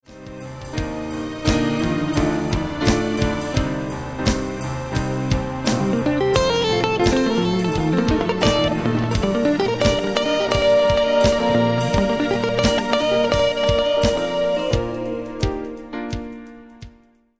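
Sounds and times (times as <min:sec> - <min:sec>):
guitar solo over chord changes: 0:00.9 - 0:15.9.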